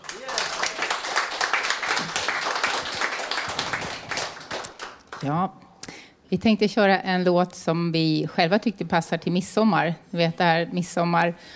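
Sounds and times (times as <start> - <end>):
crowd chatter and cheering: 0.0 - 5.1
audience applauding: 0.0 - 5.3
speech: 5.2 - 5.6, 6.3 - 11.5.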